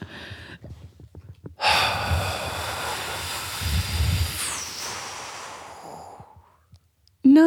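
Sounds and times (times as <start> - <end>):
long forceful breath pushed out close to the microphone: 1.6 - 6.6
strained throaty squeeze at the end of an exhale: 1.6 - 6.6.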